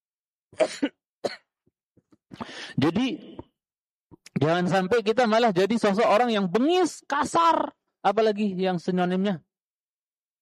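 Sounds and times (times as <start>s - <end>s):
speech: 0.6s - 1.4s, 2.4s - 3.3s, 4.4s - 9.5s
person coughing: 0.6s - 1.5s.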